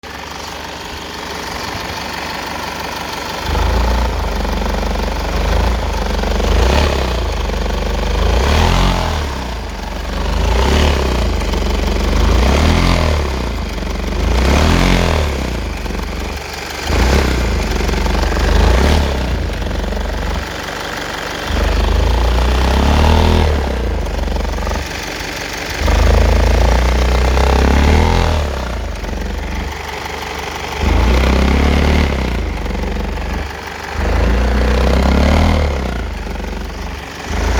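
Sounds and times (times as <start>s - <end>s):
Mazda6 engine growling with slight loss of power: 0.0s - 37.5s.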